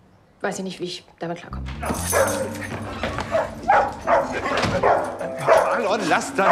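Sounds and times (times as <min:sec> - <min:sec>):
speech: 0:00.4 - 0:06.5
dog barking: 0:01.9 - 0:05.8.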